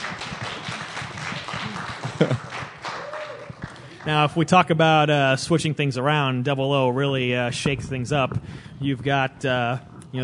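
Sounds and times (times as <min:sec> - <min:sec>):
audience applause: 0:00.0 - 0:04.4
laughter: 0:01.6 - 0:02.7
speech: 0:02.2 - 0:02.5, 0:04.0 - 0:10.2.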